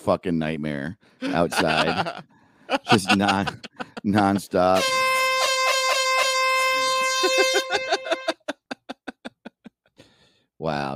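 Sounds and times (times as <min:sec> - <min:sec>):
speech: 0:00.0 - 0:05.1, 0:07.2 - 0:08.0, 0:10.6 - 0:10.9
laughter: 0:01.2 - 0:04.8, 0:07.2 - 0:09.7
loud brassy air horn blast: 0:04.7 - 0:08.3.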